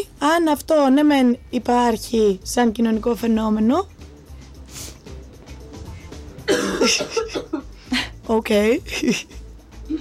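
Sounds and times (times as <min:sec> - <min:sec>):
speech: 0:00.2 - 0:04.0, 0:06.9 - 0:07.6, 0:08.3 - 0:09.9
person coughing: 0:06.4 - 0:08.2.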